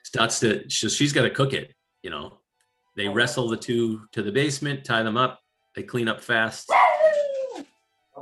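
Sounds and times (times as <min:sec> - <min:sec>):
speech: 0:00.1 - 0:02.4, 0:03.0 - 0:06.8
dog barking: 0:06.7 - 0:07.2
dog howling: 0:06.7 - 0:07.6.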